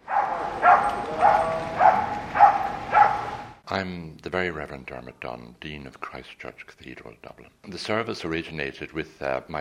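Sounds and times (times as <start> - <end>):
calm dog barking at a service with dogs in a cathedral: 0.0 - 3.4
speech: 3.7 - 9.5.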